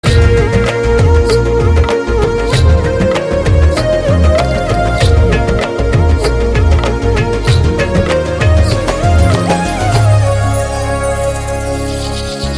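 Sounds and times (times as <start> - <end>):
flute background music: 0.0 - 12.5.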